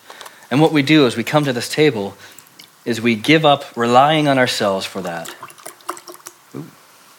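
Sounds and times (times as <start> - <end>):
speech: 0.5 - 5.5, 6.6 - 6.8
liquid poured into a communion cup: 4.9 - 6.4.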